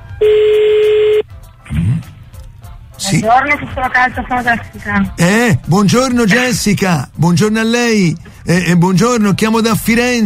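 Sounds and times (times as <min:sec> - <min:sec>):
telephone ringing tone over a phone line: 0:00.1 - 0:01.2
phone line hiss: 0:00.2 - 0:01.2
speech: 0:03.0 - 0:10.2.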